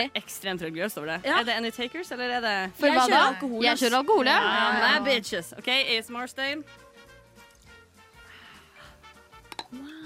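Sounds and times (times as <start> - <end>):
speech: 0.0 - 6.8, 9.7 - 10.0
glass bottles clinking together: 9.4 - 9.8.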